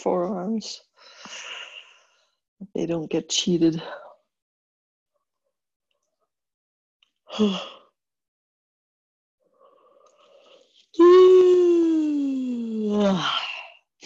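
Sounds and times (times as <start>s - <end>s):
speech: 0.0s - 1.5s, 2.6s - 4.0s, 7.3s - 7.8s, 12.8s - 13.4s
person yawning: 11.0s - 13.2s.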